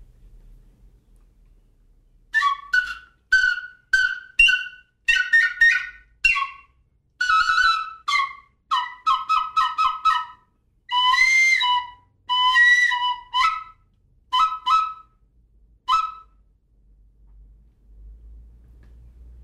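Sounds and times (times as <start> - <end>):
faint low rumble: 0.0 - 2.3, 16.4 - 19.4
ancient bone flute playing bird-like whistled notes: 2.3 - 15.2, 15.9 - 16.4.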